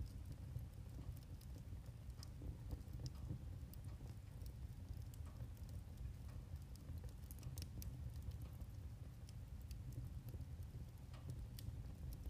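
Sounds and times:
firewood crackling and snapping in a wood stove: 0.1s - 12.2s
steady low roar of flame in a wood stove: 0.1s - 12.2s.

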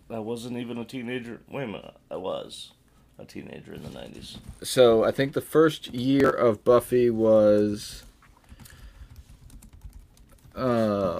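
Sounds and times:
speech: 0.1s - 8.1s, 10.6s - 11.1s
typing on a computer keyboard: 8.4s - 10.7s.

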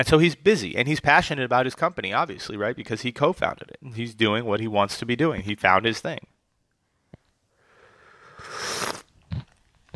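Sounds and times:
speech: 0.0s - 6.3s
slurping piping hot coffee: 8.2s - 9.9s
gulp: 8.3s - 9.9s
mouth clicks: 8.3s - 9.9s.

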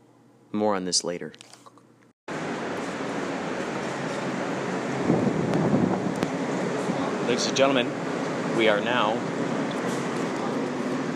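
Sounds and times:
speech: 0.5s - 1.6s, 7.3s - 8.0s, 8.6s - 9.4s
subway train moving through an underground station: 2.4s - 11.1s.

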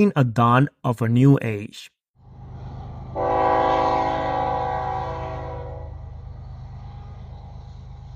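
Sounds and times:
speech: 0.0s - 2.0s
low rumbling steam locomotive engine: 2.2s - 8.1s
steam locomotive whistle blast: 3.2s - 6.0s.

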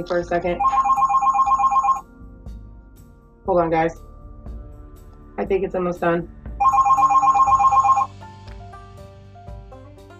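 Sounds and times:
speech: 0.0s - 0.8s, 3.5s - 4.1s, 5.4s - 6.4s
phone ringtone trilling in a warbling electronic pattern: 0.6s - 2.0s, 6.6s - 8.1s.

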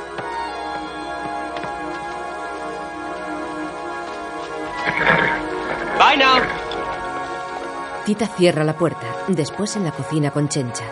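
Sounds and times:
horse-drawn carriage hoof and wheel taps while driving off: 0.0s - 8.0s
speech: 8.1s - 10.9s.

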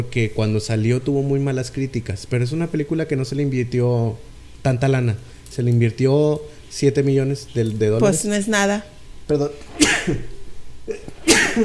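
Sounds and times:
speech: 0.0s - 10.3s
person sneezing: 9.7s - 11.6s.

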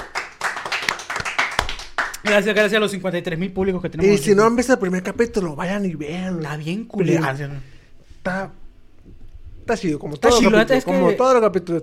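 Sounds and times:
small group applauding with hand claps: 0.0s - 2.8s
speech: 2.2s - 8.6s, 9.7s - 11.8s.

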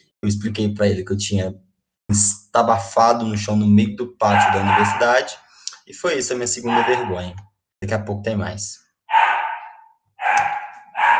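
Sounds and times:
speech: 0.0s - 8.8s
dog barking: 4.3s - 5.4s, 6.6s - 7.2s, 9.1s - 11.1s.

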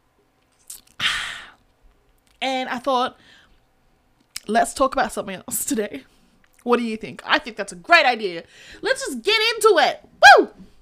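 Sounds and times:
sipping a drink: 0.5s - 1.0s
speech: 2.6s - 3.4s, 4.5s - 10.7s.

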